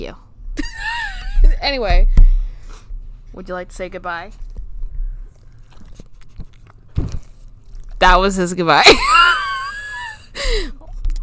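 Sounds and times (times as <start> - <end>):
speech: 0.0 - 0.3, 1.7 - 2.2, 3.4 - 4.4, 8.0 - 9.5, 10.5 - 10.8
chewing a crunchy potato olé snack: 5.3 - 8.0.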